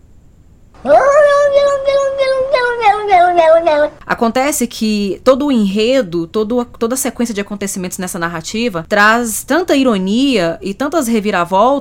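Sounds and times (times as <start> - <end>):
cat meowing loudly into a wavering yowl: 0.8 - 4.0
speech: 3.8 - 11.8.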